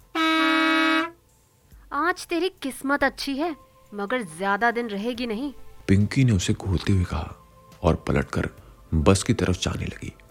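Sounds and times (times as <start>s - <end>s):
loud sustained bus horn blast: 0.0s - 1.2s
speech: 2.2s - 10.2s.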